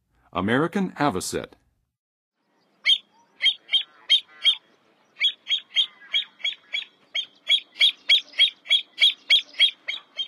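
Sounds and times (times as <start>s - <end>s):
American Avocet calling in the Western USA: 2.8s - 10.2s.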